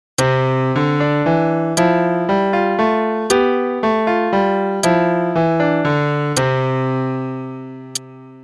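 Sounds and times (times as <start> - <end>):
polyrhythm for left and right hands: 0.2 - 6.7.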